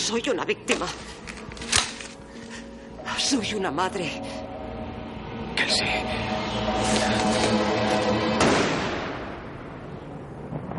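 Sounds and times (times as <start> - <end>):
dense droning background: 0.0 - 9.6
speech: 0.1 - 1.3, 3.2 - 4.4, 5.6 - 8.2
gunshot from the street: 8.4 - 9.3.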